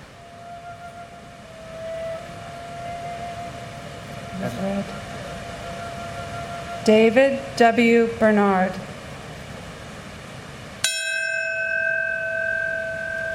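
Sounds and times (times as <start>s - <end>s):
faint sustained tone: 0.0s - 13.3s
outdoor crowd hum: 0.0s - 13.3s
speech: 4.4s - 5.1s, 6.8s - 8.8s
memorial bell ringing for moment of silence: 10.8s - 13.3s.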